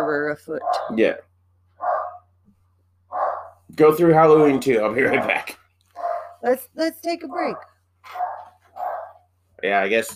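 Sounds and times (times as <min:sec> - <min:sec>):
speech: 0:00.0 - 0:01.3, 0:03.7 - 0:05.6, 0:06.4 - 0:08.3, 0:09.6 - 0:10.1
dog barking: 0:00.6 - 0:01.0, 0:01.8 - 0:02.3, 0:03.1 - 0:03.6, 0:05.0 - 0:06.4, 0:07.2 - 0:09.3.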